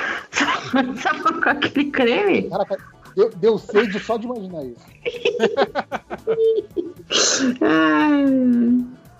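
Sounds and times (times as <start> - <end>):
short rhythmic vocal huffs: 0.0 - 6.0, 6.8 - 9.1
laughter: 0.4 - 7.1
speech: 0.6 - 9.0
person sneezing: 7.1 - 7.7.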